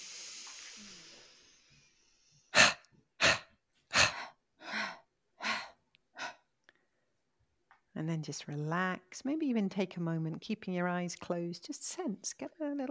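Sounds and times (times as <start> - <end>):
short forceful exhales: 0.0 - 6.4
long soft inhale: 0.0 - 7.0
speech: 8.0 - 12.8.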